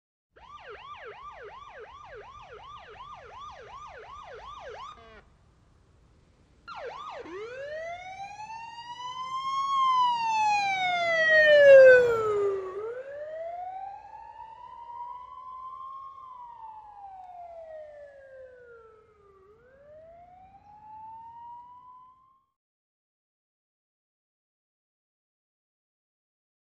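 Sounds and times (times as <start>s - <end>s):
police siren changing from whooper to wailer: 0.4s - 5.3s, 6.6s - 22.6s.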